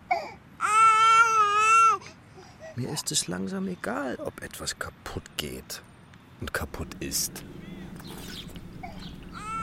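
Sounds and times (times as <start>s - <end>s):
baby whimpering and wailing: 0.1s - 2.8s, 8.8s - 9.6s
speech: 2.8s - 8.3s.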